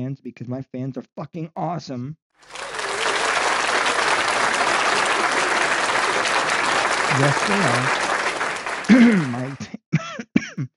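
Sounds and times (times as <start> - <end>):
speech: 0.0 - 2.6, 7.2 - 8.1, 8.9 - 10.7
laughter: 2.5 - 9.8
rough throaty coughing: 8.9 - 10.7.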